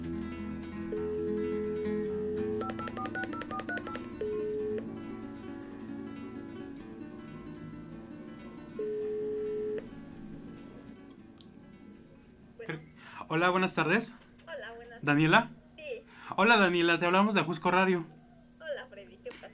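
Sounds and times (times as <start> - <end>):
telephone dial tone: 0.9 - 4.9, 8.8 - 9.8
touch-tone telephone keypad beeps: 2.3 - 4.9
speech: 13.3 - 14.2, 15.0 - 15.6, 16.4 - 18.2.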